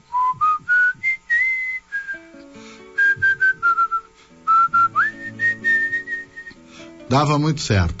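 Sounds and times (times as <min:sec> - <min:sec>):
person whistling a folk melody: 0:00.1 - 0:06.6
soft low sustained instrumental accompaniment: 0:01.6 - 0:07.9
speech: 0:07.1 - 0:07.9.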